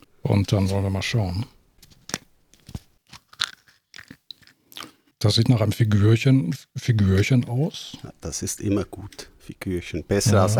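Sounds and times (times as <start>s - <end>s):
speech: 0.3s - 1.6s, 5.2s - 10.5s
chocolate egg halves cracking apart: 1.8s - 5.0s.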